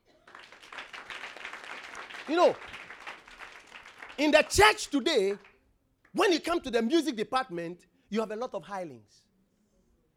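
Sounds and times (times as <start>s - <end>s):
audience applause for instrumentalists: 0.0s - 4.5s
speech: 2.3s - 2.8s, 4.2s - 5.5s, 6.1s - 9.2s.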